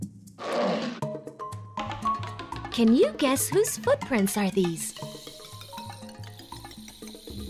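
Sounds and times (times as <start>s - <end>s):
lion roaring: 0.4s - 1.0s
speech: 2.8s - 5.1s.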